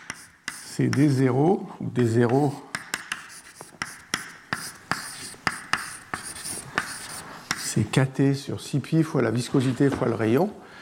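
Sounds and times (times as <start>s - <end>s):
writing an equation on a board: 0.0s - 1.2s, 2.2s - 7.8s
speech: 0.8s - 2.7s, 7.8s - 10.6s.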